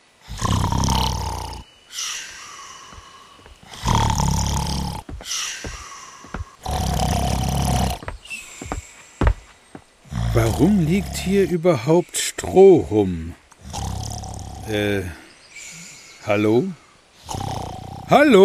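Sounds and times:
man snoring while lying on floor: 0.3s - 8.1s, 10.1s - 11.4s, 13.6s - 15.0s, 17.2s - 18.2s
speech: 10.6s - 13.4s, 14.7s - 15.2s, 16.3s - 16.8s, 18.1s - 18.4s.

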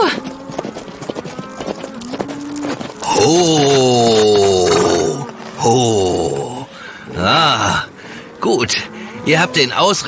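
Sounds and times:
ridden horse hooves clip-clopping while herding a cow: 0.0s - 6.6s
speech: 3.2s - 4.2s, 5.6s - 6.3s, 8.4s - 10.0s.

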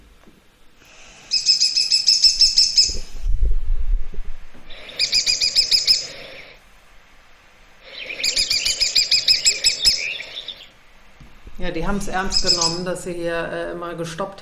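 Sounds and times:
woodpecker calls: 0.8s - 3.4s, 4.6s - 13.8s
low thumps: 2.4s - 4.8s, 11.0s - 13.5s
speech: 11.7s - 14.3s.

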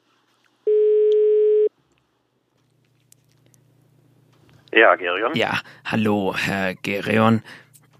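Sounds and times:
telephone line tone while placing a call: 0.7s - 1.7s
speech: 4.7s - 7.7s.

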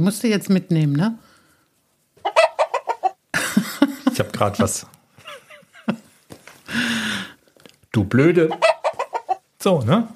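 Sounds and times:
speech: 0.0s - 1.2s, 4.4s - 5.0s, 8.0s - 8.7s, 9.6s - 10.1s
toy chicken on a piano clucking and squawking: 2.2s - 3.2s, 8.4s - 9.5s
laughter: 3.3s - 4.5s, 5.2s - 7.0s.

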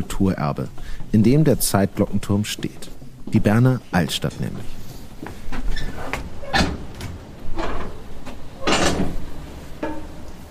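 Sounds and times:
speech: 0.0s - 4.8s
several doors opening: 5.4s - 10.4s.

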